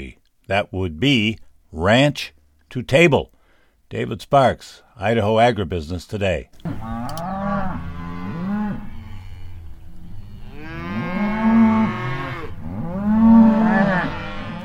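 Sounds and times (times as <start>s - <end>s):
speech: 0.0s - 3.3s, 3.9s - 7.2s
cattle being moved by ranchers in Idaho mooing: 6.7s - 14.6s.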